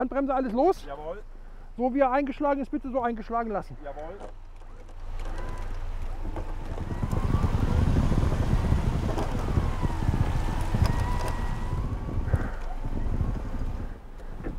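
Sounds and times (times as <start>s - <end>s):
speech: 0.0s - 4.4s
outdoor noise: 0.0s - 14.5s
car-mounted remote-controlled electric winch reeling in cable: 4.8s - 14.4s
heavy low rumble: 5.0s - 14.5s.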